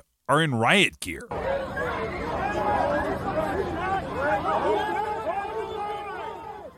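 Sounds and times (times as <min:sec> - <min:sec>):
speech: 0:00.3 - 0:01.5
dense crowd of protesters shouting: 0:01.3 - 0:06.7.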